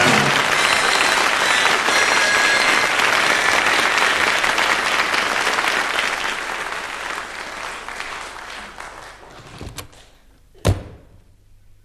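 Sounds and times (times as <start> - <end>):
applause: 0.0 - 10.0
door slamming shut: 10.6 - 11.2.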